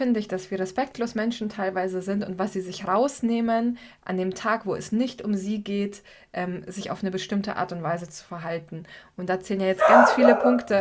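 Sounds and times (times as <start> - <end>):
speech: 0.0 - 10.8
dog barking: 9.8 - 10.8.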